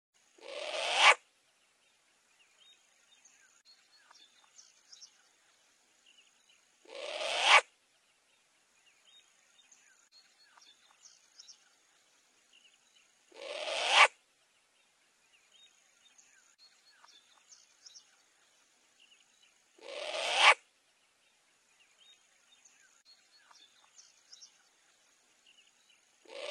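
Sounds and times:
faint twittering: 0.3s - 1.2s, 2.3s - 7.7s, 8.3s - 14.2s, 15.2s - 20.6s, 21.5s - 26.4s
short-eared owl screeching: 0.4s - 1.2s, 6.9s - 7.6s, 13.3s - 14.1s, 19.8s - 20.6s, 26.3s - 26.4s.

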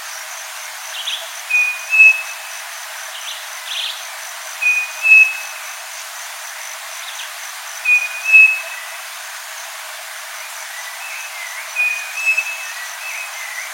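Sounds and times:
faint steady insect hiss: 0.0s - 13.7s
striped cuckoo song: 1.5s - 2.4s, 4.6s - 5.6s, 7.8s - 8.8s, 11.1s - 13.7s.

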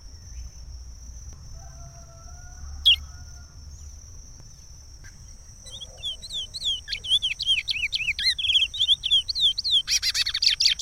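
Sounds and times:
Chestnut-bellied seed finch song with tumbling trilled whistles: 2.8s - 3.1s, 5.2s - 10.8s.

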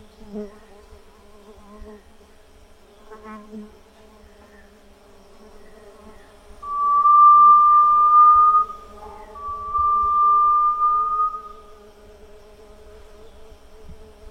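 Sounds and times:
grey-legged tinamou whistling a long pure note: 6.6s - 11.8s.

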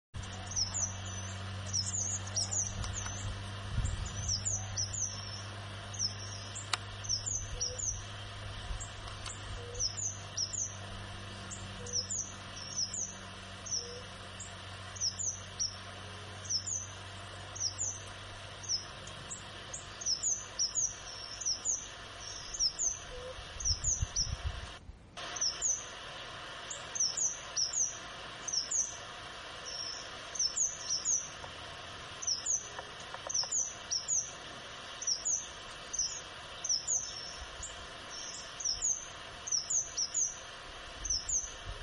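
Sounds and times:
caneleiro de chapeu preto singing: 0.2s - 24.5s, 25.2s - 26.0s, 26.6s - 31.4s, 32.1s - 41.7s.

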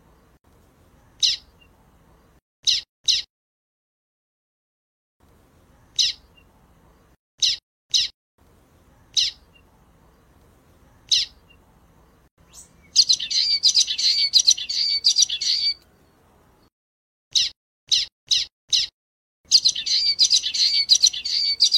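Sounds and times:
common waxbill buzzy twittering song: 1.0s - 3.3s, 5.8s - 8.1s, 8.9s - 16.7s, 17.3s - 18.9s, 19.5s - 21.7s.

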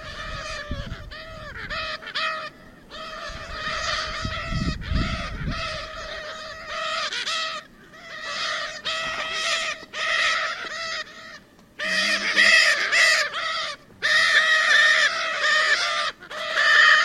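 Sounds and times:
Lear's macaw uttering rough nasal screeches: 0.0s - 17.0s.

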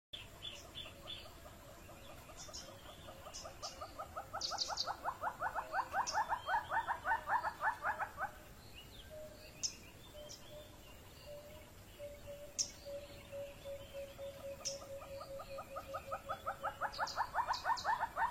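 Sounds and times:
Monteiro's hornbill rhythmic hollow clucking notes: 0.4s - 8.5s, 12.9s - 18.2s.

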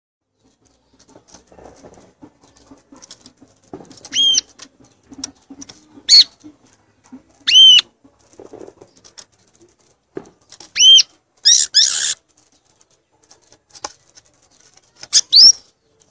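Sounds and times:
violaceous euphonia harsh buzzy bursts: 4.0s - 4.6s, 5.2s - 6.4s, 7.4s - 7.9s, 10.7s - 12.3s, 15.0s - 16.0s
violaceous euphonia whistled calls: 4.1s - 4.5s, 6.1s - 6.3s, 7.5s - 7.8s, 10.8s - 12.2s, 15.1s - 15.6s.

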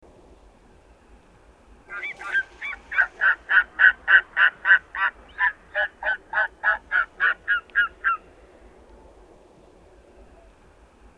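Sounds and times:
Steller's sea eagle giving harsh barking calls: 1.9s - 8.3s.

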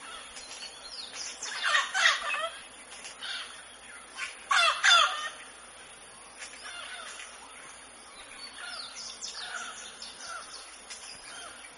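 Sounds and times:
mealy amazon giving raspy squawks and chattering notes: 1.5s - 2.6s, 4.2s - 5.4s.

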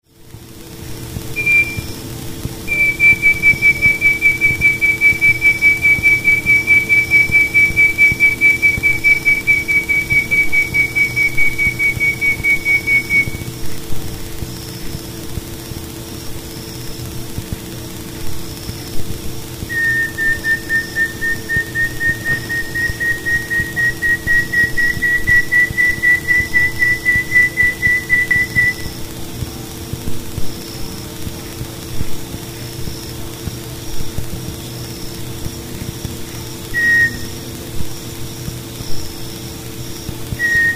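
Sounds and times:
uirapuru-veado wren singing: 1.4s - 2.0s, 2.7s - 13.5s, 19.7s - 28.9s, 36.8s - 37.4s, 40.4s - 40.7s.

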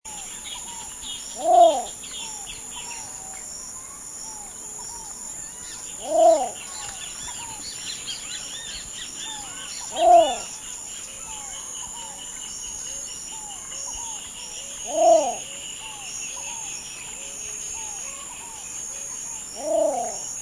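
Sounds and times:
rufescent tiger heron calling: 6.0s - 7.6s, 9.3s - 10.5s, 14.8s - 16.6s, 19.6s - 20.2s.

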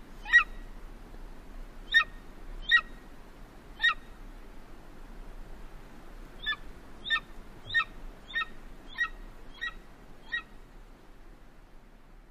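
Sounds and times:
low background rumble: 0.0s - 12.3s
golden eagle sharp yelping calls: 0.2s - 0.6s, 1.9s - 3.0s, 3.8s - 4.1s, 6.4s - 10.6s.

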